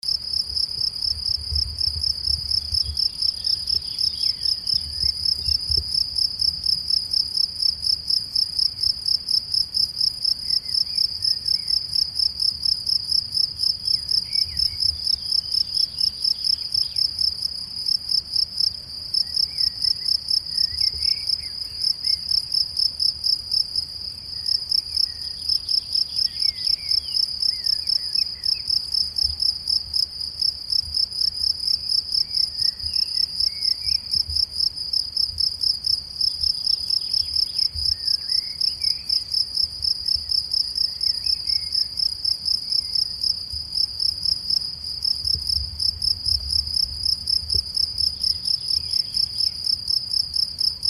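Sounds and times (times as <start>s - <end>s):
crickets chirping in a meadow: 0.1s - 50.8s.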